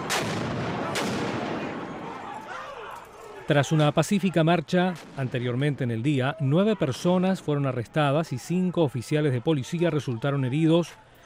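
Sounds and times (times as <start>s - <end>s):
fireworks exploding at street protest: 0.0s - 2.1s
noisy street crowd at violent workers' protest at night: 0.0s - 11.2s
speech: 3.5s - 11.0s.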